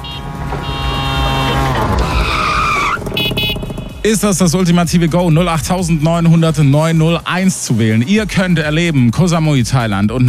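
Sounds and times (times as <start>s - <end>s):
tires screeching: 0.0s - 5.2s
tuk-tuk engine whining as a radio jingle effect: 0.0s - 5.5s
speech: 4.0s - 10.2s.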